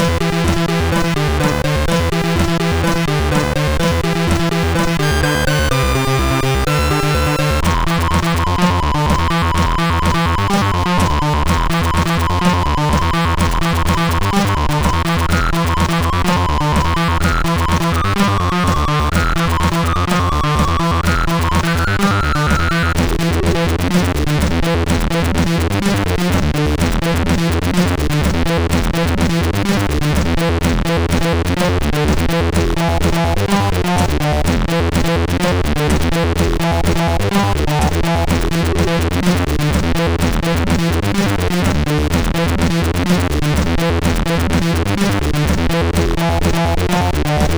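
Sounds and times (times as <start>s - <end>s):
MOS6581R4 sound chip bassline intro: 0.0s - 47.5s.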